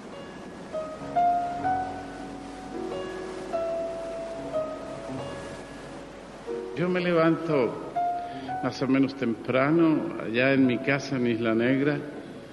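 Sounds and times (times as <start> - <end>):
faint sustained musical tones: 0.0 - 12.5
sea waves murmuring against the shore: 0.0 - 12.5
speech: 6.8 - 7.9, 8.6 - 12.2.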